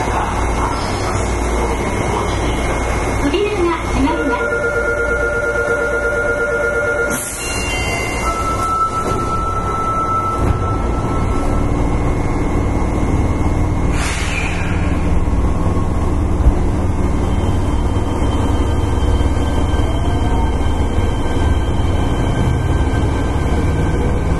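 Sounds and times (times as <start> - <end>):
Fukuoka City Subway 1000 series train running on the Airport Line: 0.0 - 24.3
brief hissy bursts: 13.9 - 14.9.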